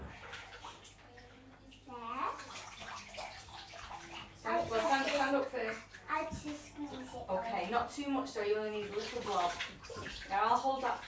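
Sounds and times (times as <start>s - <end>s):
bathwater sloshing and splashing as a bath sponge is dipped: 0.0s - 11.0s
young child's high voice: 1.0s - 2.6s, 6.0s - 7.3s
speech: 5.3s - 11.0s.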